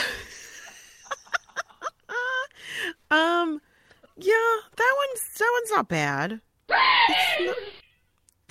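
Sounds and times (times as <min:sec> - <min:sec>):
speech: 0:03.1 - 0:07.8
startled frightened person screaming: 0:06.7 - 0:07.7.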